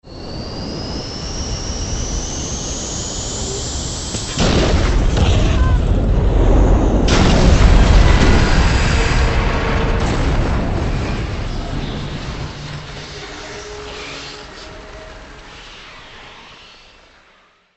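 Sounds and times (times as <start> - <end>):
airplane falling during takeoff: 3.3 - 17.2.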